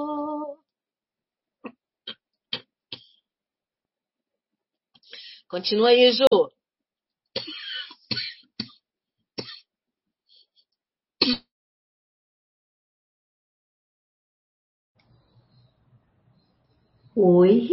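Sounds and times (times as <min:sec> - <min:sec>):
speech: 0:05.5 - 0:06.4, 0:17.2 - 0:17.7
person coughing: 0:07.4 - 0:08.8, 0:09.4 - 0:09.7, 0:11.2 - 0:11.5.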